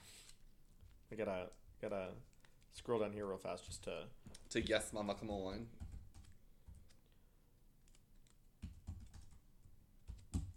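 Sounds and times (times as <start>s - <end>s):
speech: 1.1s - 5.8s
fast typing on a computer keyboard: 1.4s - 7.0s, 7.9s - 10.5s.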